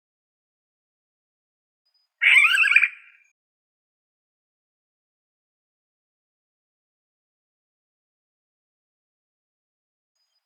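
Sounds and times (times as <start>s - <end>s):
Yellow-headed caracara Milvago chimachima screeching: 2.2s - 3.3s.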